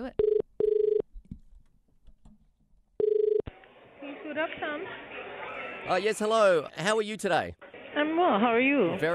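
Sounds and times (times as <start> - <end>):
telephone ringback tone through the earpiece on an international call: 0.2 - 1.0, 3.0 - 3.4
speech: 4.4 - 5.2, 5.8 - 7.6, 8.2 - 9.1.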